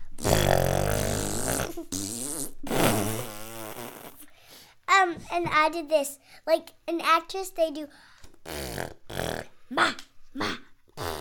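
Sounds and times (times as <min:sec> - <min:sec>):
voice blowing raspberries imitating a fart: 0:00.0 - 0:04.4, 0:08.4 - 0:11.2
speech: 0:05.3 - 0:10.6.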